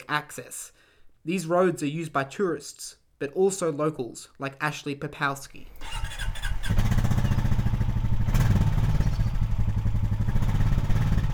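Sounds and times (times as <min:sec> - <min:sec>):
speech: 0:00.1 - 0:06.1
motorbike engine revving: 0:05.8 - 0:11.3.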